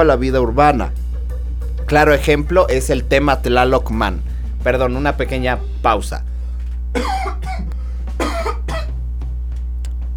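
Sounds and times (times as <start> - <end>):
speech: 0.0 - 1.0, 1.9 - 6.3, 6.9 - 7.7
steady low hum: 0.0 - 10.1
harsh coughing fit: 7.0 - 8.9.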